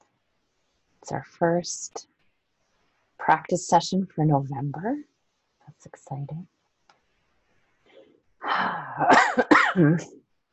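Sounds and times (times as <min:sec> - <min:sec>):
speech: 0:01.0 - 0:02.1, 0:03.2 - 0:05.1, 0:05.7 - 0:06.5, 0:09.0 - 0:10.2
person coughing and clearing their throat: 0:09.0 - 0:10.1.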